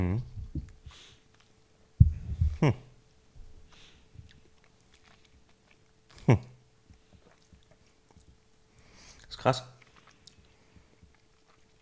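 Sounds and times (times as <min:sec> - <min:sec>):
speech: 0:02.6 - 0:02.8, 0:06.3 - 0:06.5, 0:09.4 - 0:09.7
wet lip smacking into the microphone: 0:03.7 - 0:08.5, 0:09.1 - 0:11.8.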